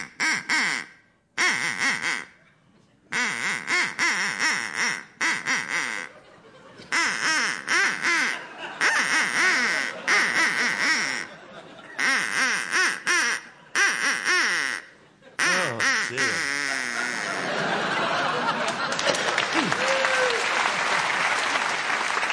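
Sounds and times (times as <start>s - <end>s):
duck quacking: 0.0s - 2.4s, 3.1s - 6.2s, 6.9s - 11.4s, 12.0s - 17.6s
laughter: 6.0s - 7.0s, 8.2s - 12.3s, 15.0s - 22.2s.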